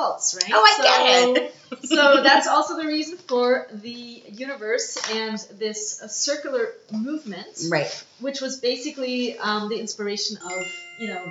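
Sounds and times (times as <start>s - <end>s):
speech: 0.0s - 11.2s
laughter: 0.6s - 2.5s
phone notification chime: 10.4s - 11.2s.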